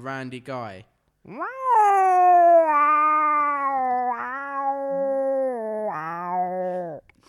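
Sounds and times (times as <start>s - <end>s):
speech: 0.0s - 2.8s
person imitating a cat with a long loud meow: 1.3s - 7.0s.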